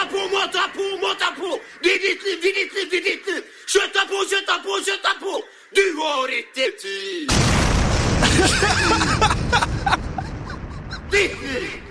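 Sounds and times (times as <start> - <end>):
speech: 0.4 - 10.0, 11.1 - 11.8
sharp crackling bursts: 7.3 - 11.1
big loud explosion rumbling: 7.3 - 11.8
laughter: 8.2 - 11.8.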